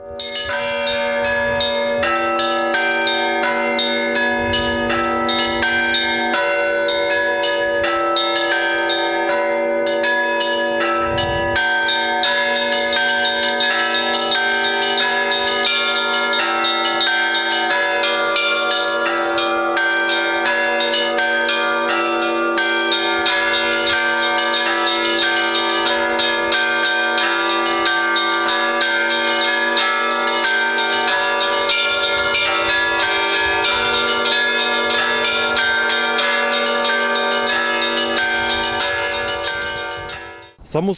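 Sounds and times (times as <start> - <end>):
peal of eight church bells ringing from a belfry during a bell festival: 0.0 - 40.9.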